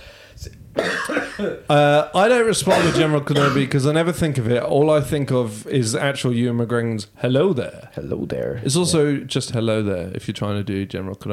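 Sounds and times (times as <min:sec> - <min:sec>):
person imitating a fictional character's raspy cough: 0:00.8 - 0:01.7, 0:02.7 - 0:03.7
speech: 0:01.4 - 0:11.3.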